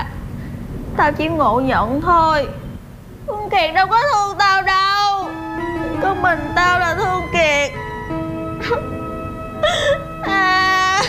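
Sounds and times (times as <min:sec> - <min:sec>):
speech: 0:01.0 - 0:02.6, 0:03.2 - 0:04.9, 0:06.0 - 0:07.8, 0:08.6 - 0:09.0, 0:09.6 - 0:11.0
steady tonal musical background: 0:04.4 - 0:11.0
person crying: 0:08.6 - 0:08.9.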